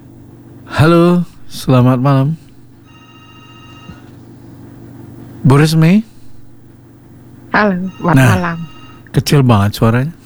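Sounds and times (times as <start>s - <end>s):
speech: 0.7s - 2.4s, 5.5s - 6.1s, 7.6s - 10.2s
telephone ringing with electronic multi-tone trill: 2.8s - 4.4s, 7.6s - 9.2s.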